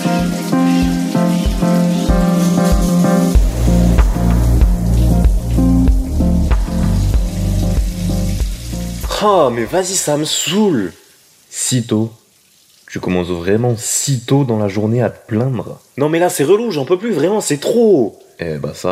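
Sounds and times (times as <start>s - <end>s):
melodic music: 0.0s - 9.8s
shower water running: 0.0s - 18.8s
pulsing bass line: 1.5s - 9.7s
speech: 9.2s - 11.0s, 11.7s - 12.2s, 12.9s - 18.8s.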